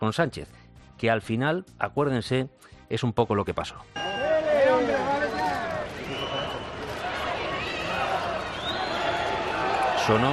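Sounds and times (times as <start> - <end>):
speech: 0.0 - 4.2, 10.1 - 10.3
shrill whistles from a parade crowd: 4.0 - 6.8, 7.6 - 9.4
large outdoor crowd at a public parade booing and jeering: 4.0 - 10.3
overlapping shouts of a parade crowd: 4.0 - 10.3.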